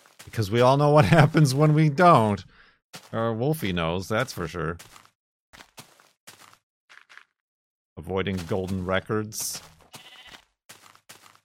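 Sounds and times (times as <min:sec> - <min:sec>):
speech: 0:00.2 - 0:05.0, 0:08.0 - 0:09.7
sheep bleating in a video game: 0:09.9 - 0:10.4.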